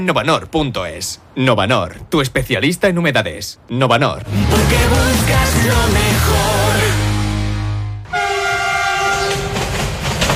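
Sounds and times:
speech: 0.0s - 6.9s
train horn sounding a sustained chord: 7.2s - 9.7s
heavy rumble and clatter of a passing train: 8.3s - 10.3s.

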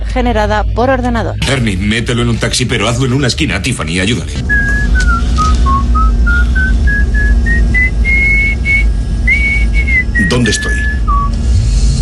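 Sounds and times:
constant low rumbling hum: 0.0s - 12.0s
speech: 0.2s - 4.6s, 10.3s - 10.8s
whistled anthem melody: 4.4s - 11.4s.

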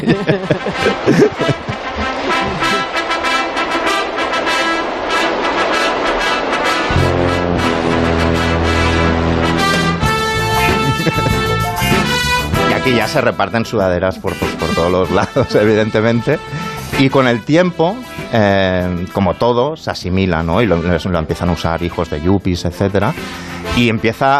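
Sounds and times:
speech: 0.0s - 1.7s, 12.9s - 24.3s
laughter: 0.0s - 3.0s, 10.6s - 12.1s, 15.0s - 15.8s
punchy rhythmic strings and drums: 0.0s - 5.0s, 6.9s - 19.2s
rousing orchestral theme from a boxing film: 0.0s - 19.4s
loud sustained brass fanfare chords: 0.0s - 19.6s, 21.8s - 24.2s.

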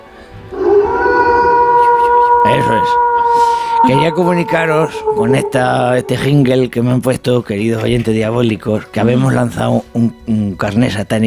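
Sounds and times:
long loud mournful howl: 0.4s - 6.9s
speech: 2.5s - 3.1s, 3.8s - 11.2s
faint airy whistle: 3.3s - 6.5s.

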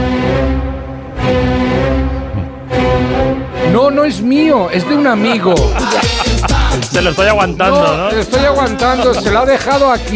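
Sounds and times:
orchestral symphony movement played from a vinyl record: 0.0s - 10.1s
speech: 4.1s - 6.1s, 7.0s - 10.1s
laughter: 5.4s - 10.1s.

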